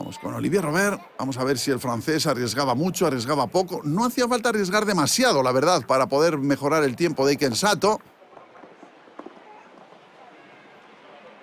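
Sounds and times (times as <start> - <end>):
steady wash of noise: 0.0 - 11.4
speech: 0.2 - 8.2
galloping horse's hooves thudding: 6.7 - 11.4.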